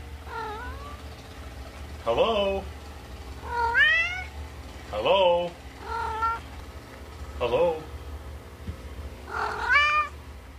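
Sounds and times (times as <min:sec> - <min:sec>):
domestic cat meowing: 0:00.3 - 0:01.0, 0:03.4 - 0:04.3, 0:05.8 - 0:06.4, 0:09.3 - 0:10.2
speech: 0:02.0 - 0:02.8, 0:04.9 - 0:05.6, 0:07.4 - 0:07.8.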